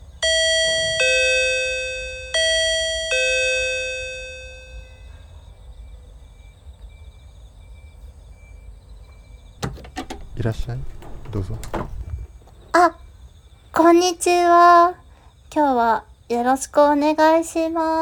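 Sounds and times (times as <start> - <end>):
bright electronic intercom doorbell chime: 0.2 - 5.0
quiet hum: 4.3 - 17.9
speech: 10.4 - 12.0, 13.8 - 17.9.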